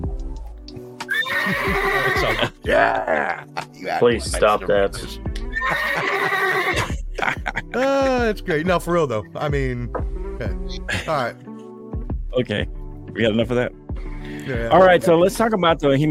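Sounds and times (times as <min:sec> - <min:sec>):
horse neighing and snorting: 0:01.1 - 0:03.2, 0:05.5 - 0:06.9
laughter: 0:01.4 - 0:08.3, 0:10.9 - 0:11.3
speech: 0:01.7 - 0:11.5, 0:12.4 - 0:12.6, 0:13.2 - 0:16.0.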